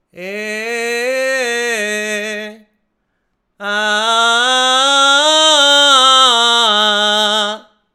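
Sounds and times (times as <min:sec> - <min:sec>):
man singing belting: 0:00.1 - 0:02.6, 0:03.6 - 0:07.7.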